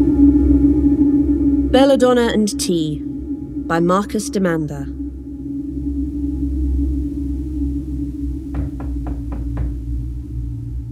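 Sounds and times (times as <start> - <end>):
steady low hum: 0.0 - 10.8
speech: 1.7 - 3.1, 3.7 - 5.0
knocking on a front door: 8.5 - 9.8.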